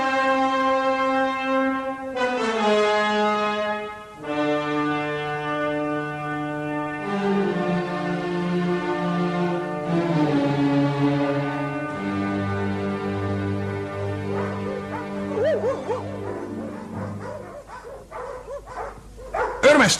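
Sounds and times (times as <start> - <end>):
long sustained horn-like tones: 0.0 - 18.0
pack of hunting dogs barking and yelping: 14.1 - 19.9.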